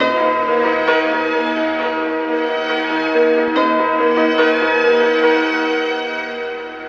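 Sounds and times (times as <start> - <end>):
sad piano and strings music loop: 0.0 - 6.8.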